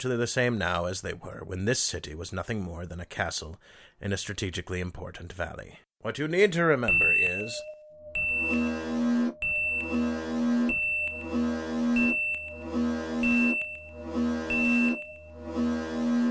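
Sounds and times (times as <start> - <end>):
speech: 0.0 - 8.9
electronic civil defense alarm klaxon of a city: 6.9 - 16.2.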